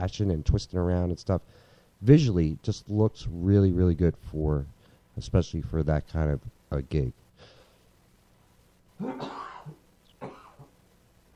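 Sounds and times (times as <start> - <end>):
speech: 0.0 - 7.2, 9.0 - 9.4
loud throaty rasping cough: 9.0 - 10.7.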